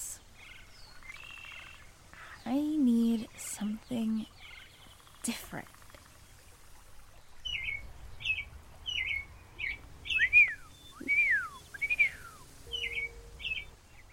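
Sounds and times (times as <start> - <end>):
small bird chirping: 0.4 - 2.5, 3.6 - 6.6, 7.2 - 14.1
faint low rumble: 0.4 - 14.1
speech: 5.2 - 5.8
loud sweeping whistled bird calls: 7.4 - 14.1.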